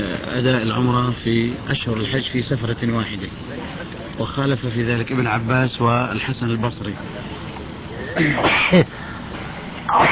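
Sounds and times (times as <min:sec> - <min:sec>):
speech: 0:00.4 - 0:07.3, 0:08.2 - 0:09.0, 0:09.9 - 0:10.1
person sneezing: 0:08.1 - 0:08.9, 0:09.9 - 0:10.1.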